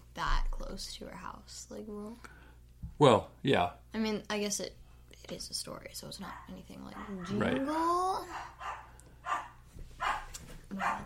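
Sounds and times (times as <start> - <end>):
low steady hum: 0.0 - 11.0
speech: 0.8 - 8.6, 10.7 - 11.0
pet dog barking: 6.2 - 7.6, 8.2 - 11.0.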